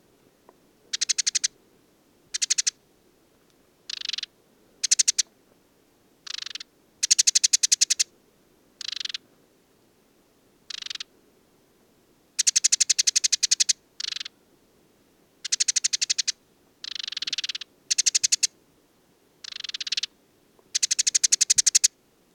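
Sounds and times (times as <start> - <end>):
male desert sparrow trilling atop an acacia at Mayateg oasis Mauritania: 0.9 - 1.5, 2.3 - 2.8, 3.9 - 5.3, 6.3 - 8.1, 8.8 - 9.2, 12.4 - 14.3, 15.4 - 18.5, 19.4 - 20.1, 20.7 - 22.3.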